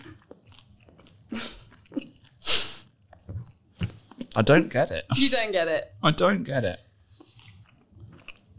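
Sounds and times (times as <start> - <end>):
crunchy chewing of chocolate and bacon pancakes with crispy bacon: 0.0 - 4.4, 7.1 - 8.5
speech: 1.3 - 1.5, 4.4 - 6.8.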